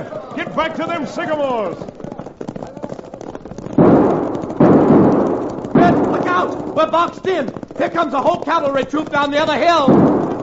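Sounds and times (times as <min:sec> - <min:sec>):
speech: 0:00.4 - 0:02.0, 0:06.4 - 0:10.2
Winchester army rifles firing in a fight against a cavalry troop: 0:03.7 - 0:07.7, 0:09.8 - 0:10.4.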